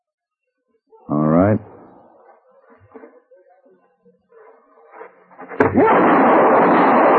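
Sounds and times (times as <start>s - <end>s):
speech: 0.9s - 1.7s
gunshot from a Derringer pistol: 5.5s - 7.1s.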